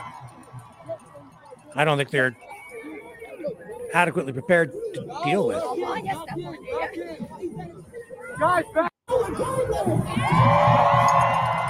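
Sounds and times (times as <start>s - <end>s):
large crowd of protesters cheering and shouting: 0.0s - 3.9s, 8.0s - 11.6s
speech: 1.8s - 2.5s, 3.9s - 7.8s, 8.4s - 11.1s.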